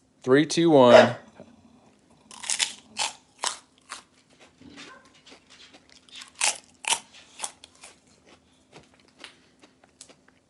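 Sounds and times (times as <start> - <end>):
faint steady hum: 0.0 - 10.4
speech: 0.2 - 1.2
crunching hot and spicy microwave pork rinds: 2.1 - 10.4.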